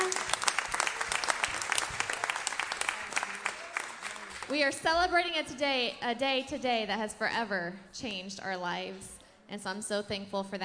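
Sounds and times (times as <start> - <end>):
crowd of people clapping in dense applause: 0.0 - 4.7
speech: 4.5 - 10.6.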